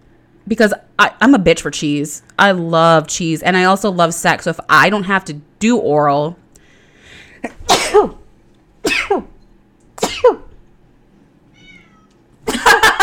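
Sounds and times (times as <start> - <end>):
speech: 0.5 - 6.4, 7.4 - 8.2
cat meowing with a falling drawn-out tone: 11.5 - 12.2
laughter: 12.4 - 13.0.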